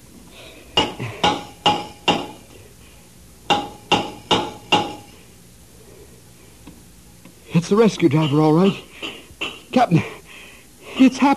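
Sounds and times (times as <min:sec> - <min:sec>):
hammer tapping signals on a steel submarine hull: 0:00.8 - 0:02.4, 0:03.5 - 0:05.1
speech: 0:07.6 - 0:08.9, 0:09.8 - 0:10.2, 0:11.0 - 0:11.3.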